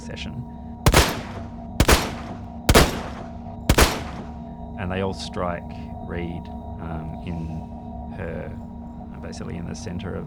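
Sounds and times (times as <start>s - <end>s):
speech: 0.1s - 0.6s, 4.8s - 10.2s
pistol fired in rapid succession: 0.9s - 4.4s.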